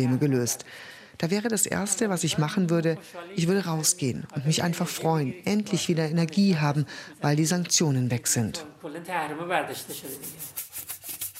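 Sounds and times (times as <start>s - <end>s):
speech: 0.0s - 10.9s
scrubbing a washbasin during office cleaning: 9.9s - 11.3s.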